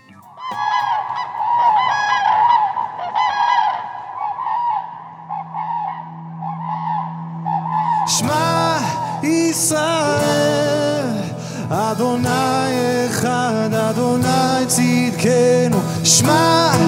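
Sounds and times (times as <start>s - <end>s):
loud goose honking from several birds: 0.0s - 9.2s
steady low hum: 0.0s - 12.0s
speech: 11.9s - 16.8s.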